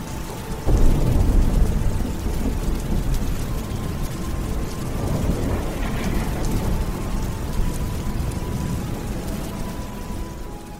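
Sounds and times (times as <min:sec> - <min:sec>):
deep rumble of thunder: 0:00.0 - 0:10.7
heavy rain drumming against windows and rooftops of an inn on a cold winter night: 0:00.0 - 0:10.7.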